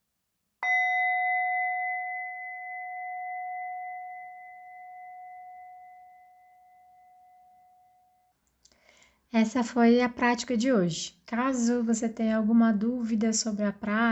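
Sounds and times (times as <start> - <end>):
meditation bell struck once: 0.6 - 8.3
speech: 9.3 - 14.1.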